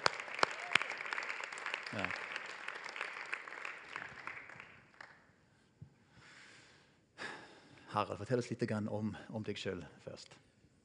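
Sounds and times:
audience applause: 0:00.0 - 0:05.2
speech: 0:01.9 - 0:02.3, 0:08.0 - 0:10.5.

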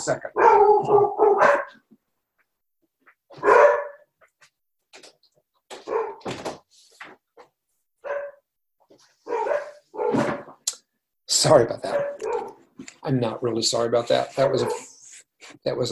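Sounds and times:
speech: 0:00.0 - 0:01.3, 0:11.4 - 0:12.1, 0:13.0 - 0:14.9, 0:15.6 - 0:15.9
dogs barking: 0:00.2 - 0:01.9, 0:03.3 - 0:04.3, 0:05.7 - 0:06.4, 0:08.0 - 0:08.4, 0:09.2 - 0:10.5, 0:11.8 - 0:12.7, 0:14.4 - 0:15.0.

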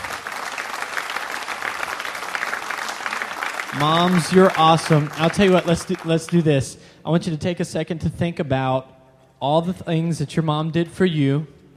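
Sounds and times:
audience applause for moms: 0:00.0 - 0:06.5
speech: 0:03.7 - 0:11.6.

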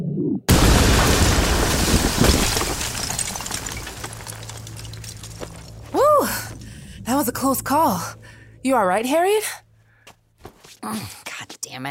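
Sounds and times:
loud explosion: 0:00.5 - 0:04.4
roaring rumble of debris: 0:00.5 - 0:06.9
speech: 0:07.1 - 0:09.6, 0:10.8 - 0:11.2.

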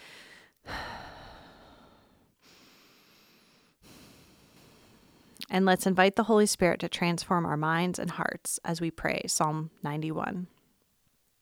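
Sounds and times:
slow deep breathing during a guided prayer: 0:00.0 - 0:05.4
speech: 0:05.5 - 0:10.6.

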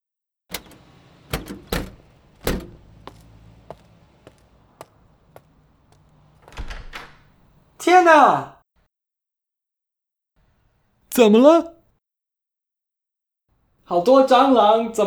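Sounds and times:
door lock clicking: 0:00.5 - 0:02.8, 0:06.4 - 0:07.4
door rattling: 0:00.5 - 0:07.8
speech: 0:07.8 - 0:08.5, 0:11.2 - 0:11.8, 0:13.9 - 0:15.0.

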